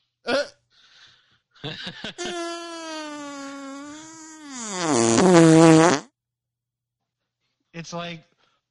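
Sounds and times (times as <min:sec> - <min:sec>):
speech: 0:01.6 - 0:02.5, 0:04.9 - 0:06.0, 0:07.8 - 0:08.3
laughter: 0:01.6 - 0:02.6
buzzing fart noise blown with the lips: 0:02.2 - 0:06.1.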